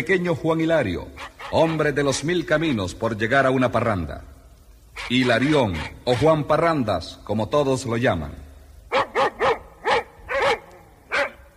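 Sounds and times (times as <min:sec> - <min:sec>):
speech: 0:00.0 - 0:04.3, 0:05.0 - 0:08.4
dogs barking: 0:01.1 - 0:02.1, 0:08.9 - 0:11.5.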